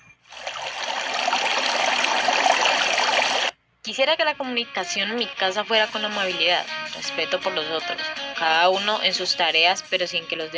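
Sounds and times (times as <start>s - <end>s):
river water flowing over rocks: 0.4s - 3.5s
speech: 3.9s - 10.5s.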